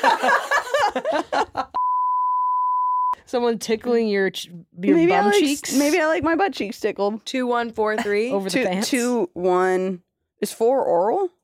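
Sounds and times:
speech: 0.0s - 1.6s, 3.3s - 11.4s
laughter: 0.0s - 1.8s
loud steady high-pitched censor bleep: 1.8s - 3.2s
person talking quickly: 4.8s - 6.3s, 8.0s - 9.2s.

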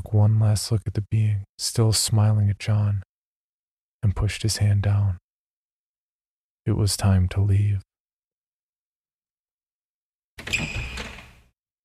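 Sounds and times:
speech: 0.1s - 3.1s, 4.0s - 5.2s, 6.6s - 7.9s
wooden door creaking open: 10.4s - 11.6s.

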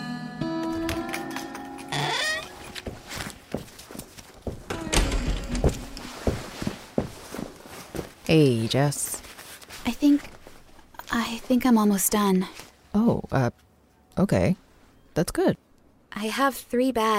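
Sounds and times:
man's footsteps clattering aboard a bus: 0.7s - 8.3s
bus door opening with a mechanical whine and thud: 4.7s - 6.2s
speech: 8.3s - 9.1s, 9.9s - 10.3s, 11.3s - 17.1s.

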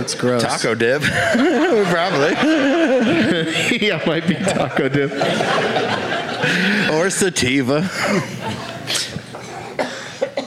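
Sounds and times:
speech: 0.0s - 9.0s
laughter: 0.4s - 9.6s
short harsh coughs: 8.0s - 10.4s.

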